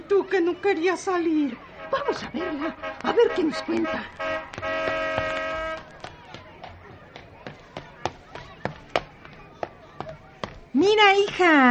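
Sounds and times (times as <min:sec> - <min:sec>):
speech: 0:00.1 - 0:04.4, 0:10.8 - 0:11.6
car horn blast: 0:01.8 - 0:05.8.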